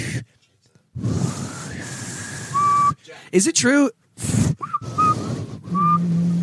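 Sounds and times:
breathy blowing from a failed attempt to whistle: 0.9 - 3.4, 4.2 - 6.4
faint thin whistle tone: 2.3 - 3.0, 4.6 - 6.1
speech: 3.3 - 4.8.

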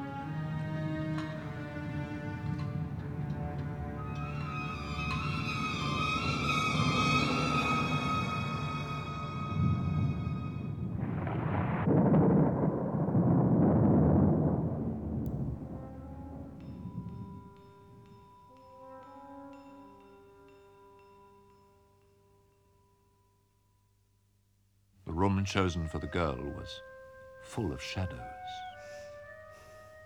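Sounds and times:
sustained tonal backdrop: 0.0 - 30.0
low rolling thunder of a gathering storm: 9.6 - 17.6
speech: 25.2 - 26.9, 27.5 - 28.7.

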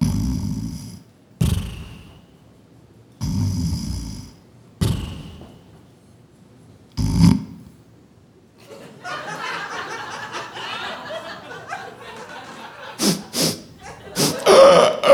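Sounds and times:
person imitating loud rasping snoring of a sleeping couple: 0.0 - 2.2, 3.2 - 5.6, 7.0 - 7.6, 13.0 - 15.1
laughter: 8.6 - 15.1.

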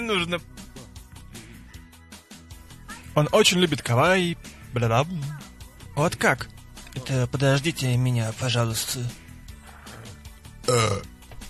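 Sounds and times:
speech: 0.1 - 0.6, 3.2 - 9.2, 10.7 - 11.1
loud low-pitched gravelly burp: 10.6 - 11.2.

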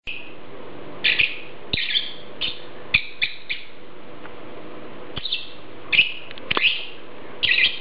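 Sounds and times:
lovebird chirping with harsh high squeaky notes: 1.0 - 3.8, 5.2 - 7.7.

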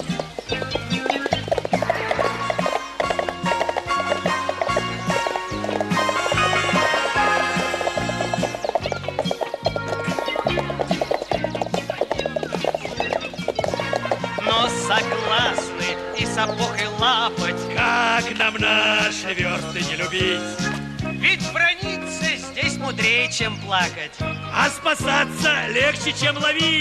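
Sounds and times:
horse hooves clip-clopping on a road as a rider sets off: 0.0 - 17.2
music: 0.0 - 26.7
speech: 18.3 - 20.7, 22.2 - 26.7.

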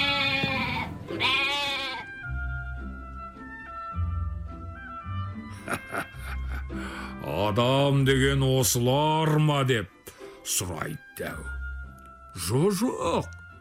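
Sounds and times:
goats grazing in a meadow bleating: 0.0 - 2.2
laughter: 5.5 - 7.1
speech: 7.5 - 11.6, 12.4 - 13.4.

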